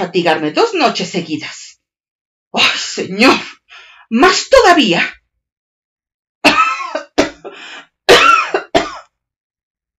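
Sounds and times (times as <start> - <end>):
speech: 0.0 - 1.6, 2.5 - 5.2
loud harsh coughing: 6.5 - 9.2.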